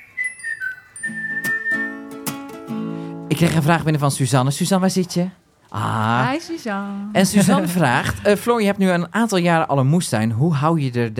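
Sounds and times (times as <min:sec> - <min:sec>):
chiming tones: 0:00.0 - 0:01.7
bright whistled jingle melody: 0:00.0 - 0:03.2
speech: 0:03.4 - 0:11.1
laughter: 0:05.9 - 0:08.7.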